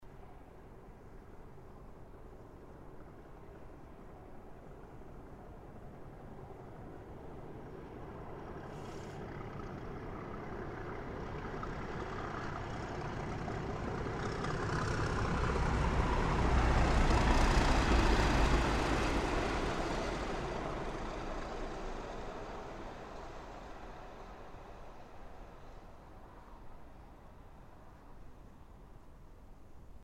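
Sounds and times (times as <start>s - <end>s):
trains: 0.2s - 29.2s.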